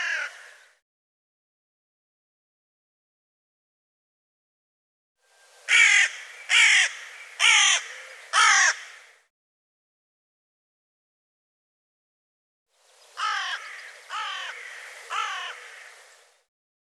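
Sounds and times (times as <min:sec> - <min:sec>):
bird giving harsh buzzy caws: 0:00.0 - 0:00.6, 0:05.7 - 0:09.3, 0:13.2 - 0:16.0.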